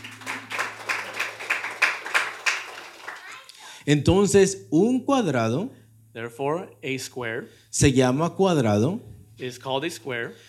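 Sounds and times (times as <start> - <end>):
audience clapping hands in a steady rhythm: 0.0 - 3.7
low steady hum: 0.0 - 10.4
speech: 3.9 - 10.4.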